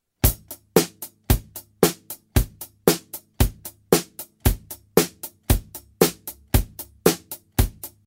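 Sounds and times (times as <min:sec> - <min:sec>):
drums: 0:00.0 - 0:08.0.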